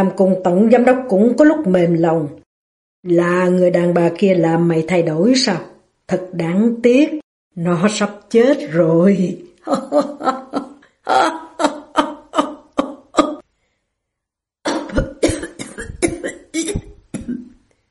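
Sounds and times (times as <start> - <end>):
speech: 0.0 - 2.4, 3.0 - 11.4
man laughing harshly: 9.7 - 13.4
man coughing up blood with choking bursts: 12.8 - 13.4, 14.7 - 17.5.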